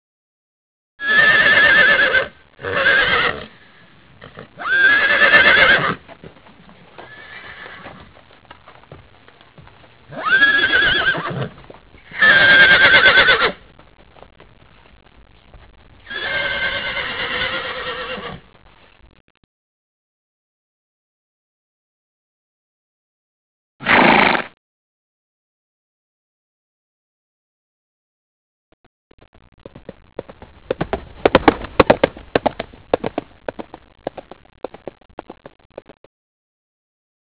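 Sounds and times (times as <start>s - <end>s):
horses: 1.0s - 19.2s, 29.3s - 36.0s.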